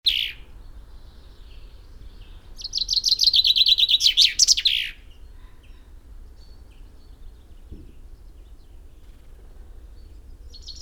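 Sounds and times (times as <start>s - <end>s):
common chaffinch Fringilla coelebs singing: 0.0s - 9.3s.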